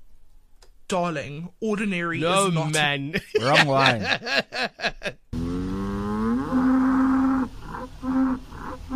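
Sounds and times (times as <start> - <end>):
speech: 0.9 - 5.2
laughter: 3.2 - 5.2
Ankole cattle mooing: 5.4 - 8.9.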